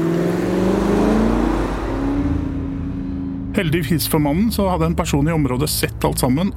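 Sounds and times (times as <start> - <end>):
car revving and accelerating away: 0.0 - 3.6
speech: 3.6 - 6.5.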